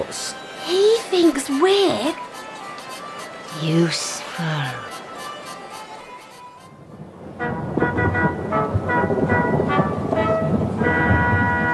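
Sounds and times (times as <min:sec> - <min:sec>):
speech: 0:00.1 - 0:02.3, 0:03.6 - 0:04.9
thunder rumbling: 0:06.8 - 0:11.7.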